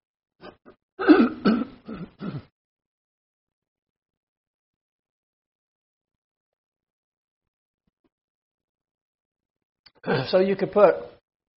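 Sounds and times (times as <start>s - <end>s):
person clearing throat: 0.5s - 2.5s
speech: 10.0s - 11.1s.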